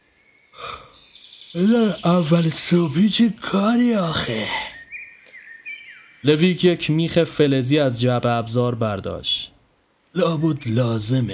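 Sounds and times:
person acting out a yawn: 0.6s - 1.0s
speech: 1.5s - 4.7s, 6.2s - 9.5s, 10.1s - 11.3s.

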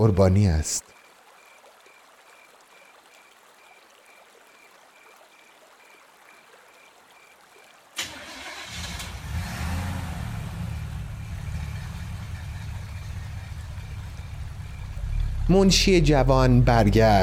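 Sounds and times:
speech: 0.0s - 1.0s, 15.5s - 17.2s
car engine starting and driving away: 8.8s - 16.0s.

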